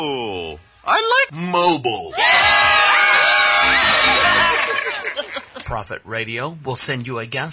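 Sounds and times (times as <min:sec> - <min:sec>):
speech: 0:00.9 - 0:02.8, 0:05.7 - 0:07.5
group of voices screaming and whooping: 0:02.1 - 0:05.6
laughter: 0:02.6 - 0:05.8.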